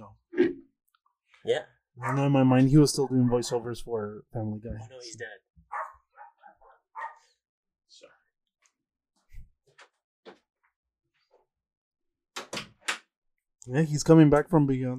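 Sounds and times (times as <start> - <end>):
speech: 1.4 - 5.4, 13.6 - 14.9
dog barking: 2.0 - 2.3, 5.7 - 7.3.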